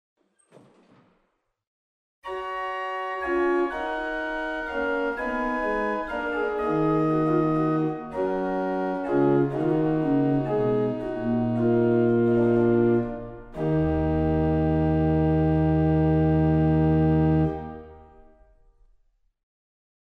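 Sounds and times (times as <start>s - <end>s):
Principal 8 organ stop in Waltershausen: 2.3s - 17.8s.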